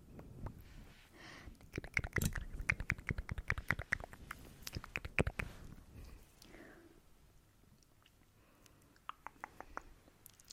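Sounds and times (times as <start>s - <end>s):
wet mouth sounds with clicks and smacks: 1.6s - 5.5s, 7.8s - 10.5s.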